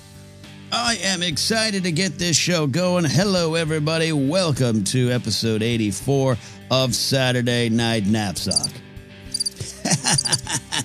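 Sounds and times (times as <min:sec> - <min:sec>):
speech: 0:00.7 - 0:08.8
crickets chirping: 0:09.3 - 0:09.6, 0:10.2 - 0:10.4
laughter: 0:09.6 - 0:10.8.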